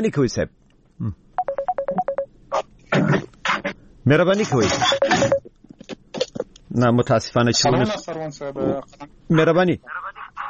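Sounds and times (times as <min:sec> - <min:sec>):
speech: 0:00.0 - 0:01.2, 0:04.1 - 0:05.4, 0:06.8 - 0:10.0
incoming Skype call ringtone of short electronic beeps: 0:01.4 - 0:02.3, 0:04.5 - 0:05.5.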